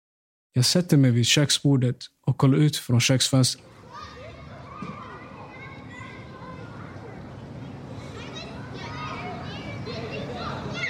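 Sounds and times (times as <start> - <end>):
speech: 0.5 - 3.8
children shrieking and playing outdoors at a distance: 3.6 - 10.8.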